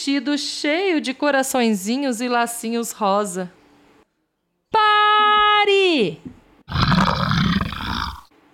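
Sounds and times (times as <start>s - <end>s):
speech: 0.0s - 3.6s, 5.6s - 7.2s
hungry lion roaring: 6.7s - 8.3s.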